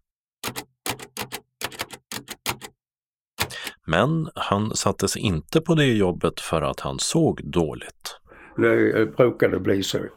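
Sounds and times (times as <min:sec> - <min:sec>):
typewriter keystrokes clacking: 0:00.4 - 0:02.8, 0:03.4 - 0:03.8
speech: 0:03.9 - 0:08.0, 0:08.6 - 0:10.1.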